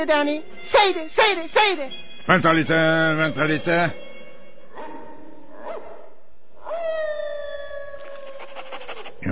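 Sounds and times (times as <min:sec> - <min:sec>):
speech: 0:00.0 - 0:04.1
dogs barking in short yelps: 0:04.7 - 0:06.8
dogs howling with rising harmonics: 0:04.7 - 0:09.2.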